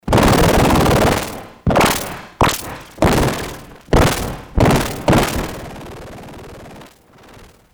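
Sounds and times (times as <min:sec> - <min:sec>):
gun: 0:00.0 - 0:07.6.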